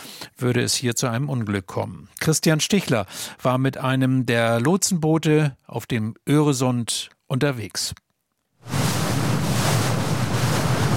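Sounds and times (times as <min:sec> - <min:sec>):
speech: 0:00.4 - 0:08.0
gusty wind noise: 0:08.6 - 0:10.9
rough sea surf of wind-driven waves: 0:08.6 - 0:10.9.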